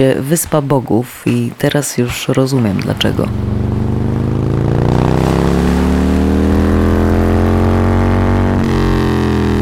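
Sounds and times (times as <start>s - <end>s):
speech: 0.0s - 3.8s
motorcycle taxi engine revving: 2.9s - 9.6s.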